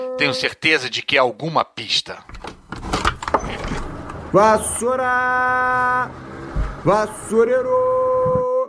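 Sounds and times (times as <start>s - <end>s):
speech: 0.2s - 2.4s, 4.3s - 6.2s, 6.8s - 8.0s
window sliding open with scraping and rattling: 2.3s - 4.8s, 5.8s - 7.1s.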